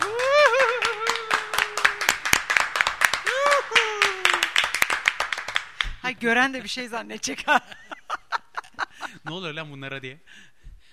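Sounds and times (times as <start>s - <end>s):
voices calling out and cheering: 0.0s - 2.4s, 3.2s - 4.8s
studio audience applause with many hands clapping: 0.0s - 6.0s
speech: 6.2s - 7.8s, 9.3s - 10.5s
laughter: 7.2s - 9.4s.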